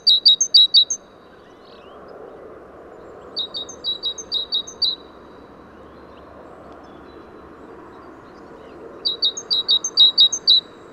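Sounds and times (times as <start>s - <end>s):
great tit Parus major giving high clipped double notes: 0.0s - 1.0s, 3.4s - 5.1s, 8.6s - 10.7s
steady background noise: 0.0s - 10.9s.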